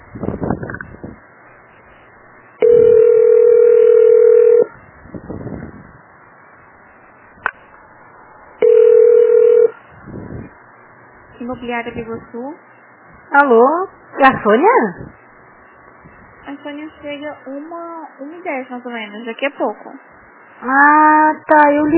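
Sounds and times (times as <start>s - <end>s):
low-pitched telephone ringing tones on a call to a business line: 2.6s - 4.8s, 8.6s - 9.8s
speech: 11.6s - 15.2s, 16.5s - 21.9s.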